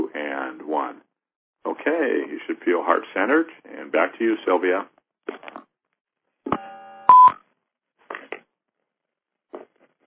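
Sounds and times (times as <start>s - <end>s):
speech: 1.8s - 4.9s
phone line beep: 6.6s - 7.4s.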